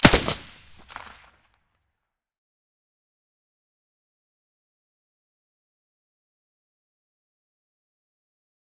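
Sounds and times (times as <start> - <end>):
SA58 rifle shot with silencer: 0.0 - 1.3.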